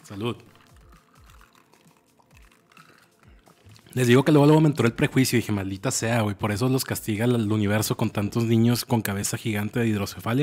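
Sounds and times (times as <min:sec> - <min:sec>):
liquid sloshing: 0:00.0 - 0:04.8
speech: 0:00.1 - 0:00.6, 0:04.0 - 0:10.4
person gulping a drink: 0:00.4 - 0:04.0.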